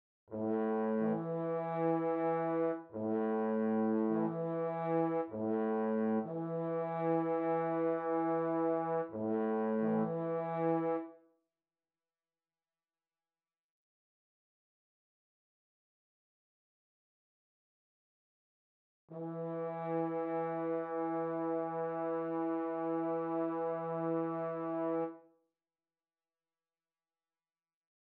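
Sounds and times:
French horns: 0.3s - 11.1s, 19.1s - 25.2s.

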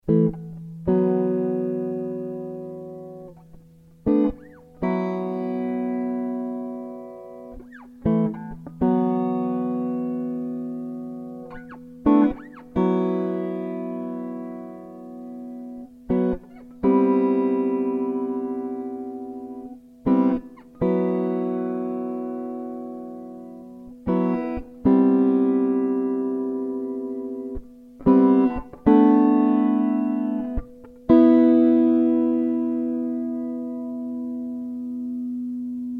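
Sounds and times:
jazzy guitar riffs in E minor at 120 bpm: 0.0s - 35.9s.

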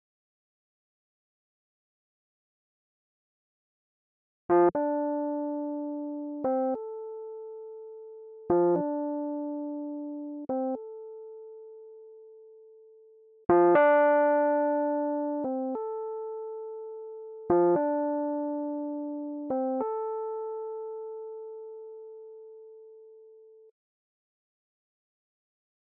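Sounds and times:
Rhodes electric piano riffs: 4.7s - 11.1s, 13.5s - 16.7s, 17.4s - 21.8s.

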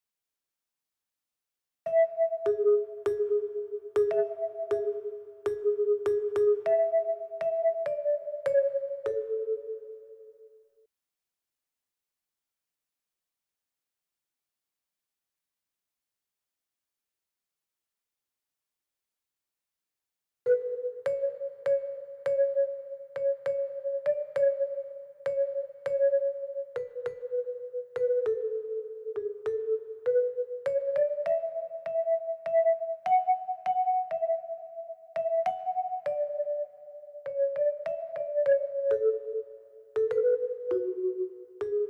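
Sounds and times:
marimba: 1.9s - 10.4s, 20.5s - 41.8s.

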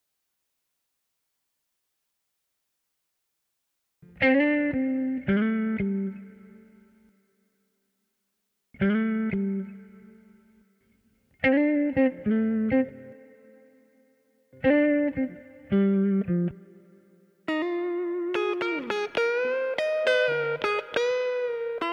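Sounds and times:
guitar riffs: 4.0s - 6.8s, 8.8s - 10.4s, 11.4s - 13.8s, 14.6s - 21.9s.

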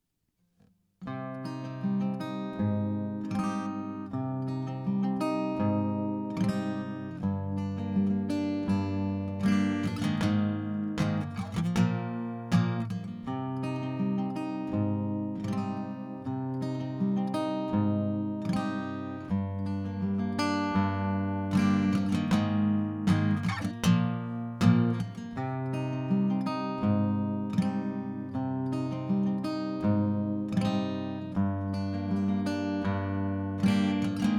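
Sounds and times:
dry acoustic guitar: 1.0s - 34.3s.

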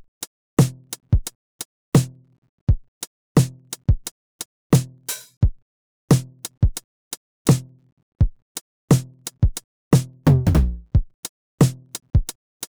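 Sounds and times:
808 drum: 0.6s - 1.3s, 2.0s - 2.8s, 3.4s - 4.1s, 4.8s - 6.8s, 7.5s - 12.4s.

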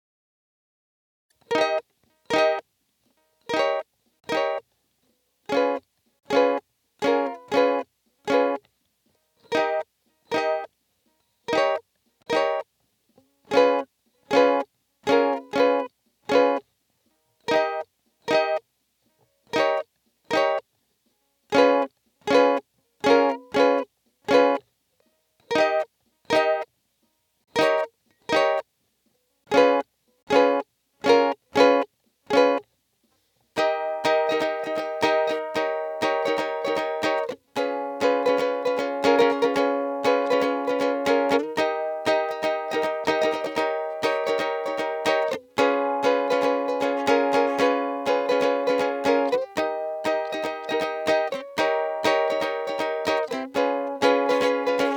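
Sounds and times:
groovy ukulele: 1.4s - 2.6s, 3.4s - 4.6s, 5.5s - 8.6s, 9.4s - 10.7s, 11.5s - 12.6s, 13.2s - 16.6s, 17.5s - 18.6s, 19.5s - 20.6s, 21.5s - 24.6s, 25.4s - 26.7s, 27.5s - 28.6s, 29.5s - 32.6s, 33.6s - 54.9s.

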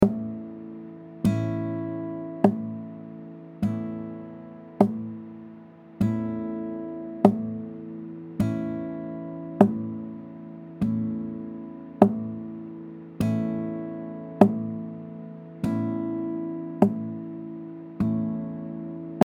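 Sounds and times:
mellow acoustic guitar: 0.0s - 19.2s.

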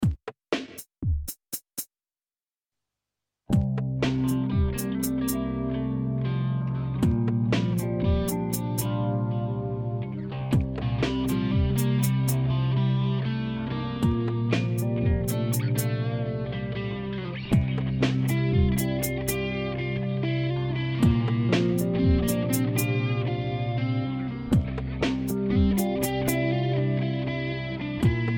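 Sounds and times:
improvised music in 7 4 time: 3.5s - 28.3s.

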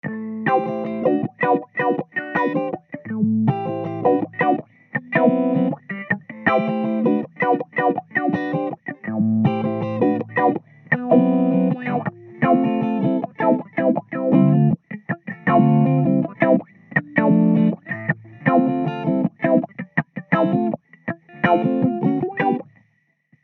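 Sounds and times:
guitar riff in A minor at 160 BPM: 0.0s - 22.7s.

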